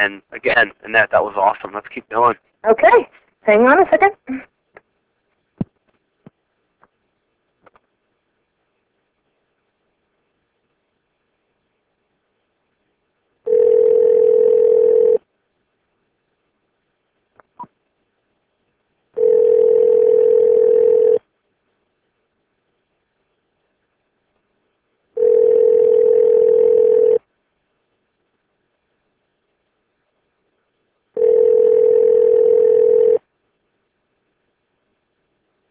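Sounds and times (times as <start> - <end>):
speech: 0.0 - 4.4
telephone ringback tone while placing a call: 13.5 - 15.2, 19.2 - 21.2, 25.2 - 27.2, 31.2 - 33.2.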